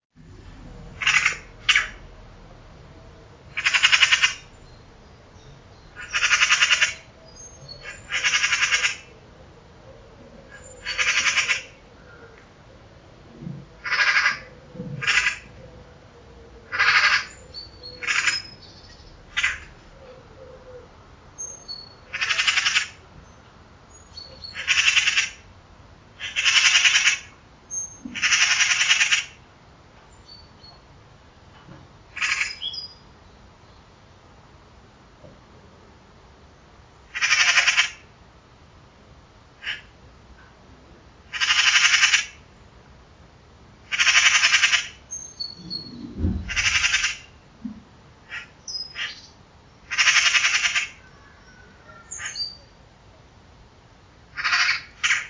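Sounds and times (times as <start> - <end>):
Pica pica calling: 1.0 - 2.1, 3.5 - 4.8, 5.4 - 9.2, 10.5 - 11.9, 13.8 - 15.5, 16.6 - 20.6, 21.4 - 23.0, 24.2 - 25.4, 26.2 - 29.4, 32.1 - 33.0, 37.1 - 38.1, 39.6 - 39.9, 41.3 - 42.5, 43.8 - 47.4, 48.3 - 52.8, 54.3 - 55.2.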